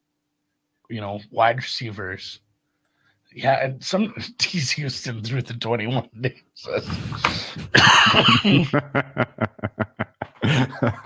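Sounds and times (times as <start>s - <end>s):
speech: 0.9s - 2.4s, 3.3s - 11.0s
person having a coughing fit: 6.8s - 8.8s, 10.4s - 11.0s
laughter: 6.8s - 11.0s.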